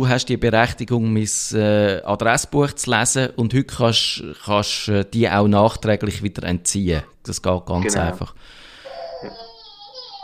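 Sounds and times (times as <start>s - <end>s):
speech: 0.0s - 8.6s, 9.2s - 9.4s
faint baby crying: 7.8s - 10.2s.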